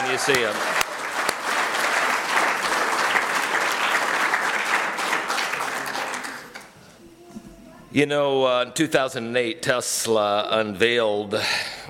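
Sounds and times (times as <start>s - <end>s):
audience applauding: 0.0s - 6.8s
speech: 0.2s - 0.8s, 7.9s - 11.7s.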